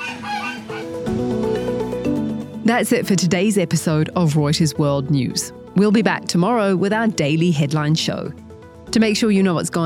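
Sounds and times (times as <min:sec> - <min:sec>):
flock of guard geese honking alarm calls at a prison: 0:00.0 - 0:02.0
speech: 0:02.7 - 0:09.8.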